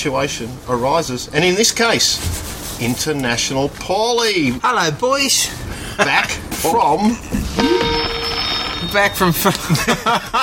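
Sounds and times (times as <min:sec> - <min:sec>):
speech: 0:00.0 - 0:08.1, 0:08.9 - 0:10.4
electronic telephone ringing: 0:07.6 - 0:09.5
laughter: 0:09.5 - 0:10.4.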